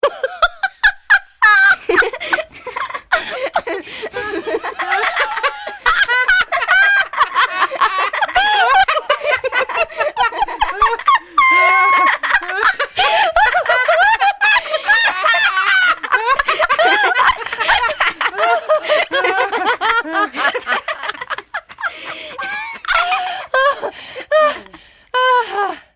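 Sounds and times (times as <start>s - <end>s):
mix of laughter: 0.0s - 25.8s.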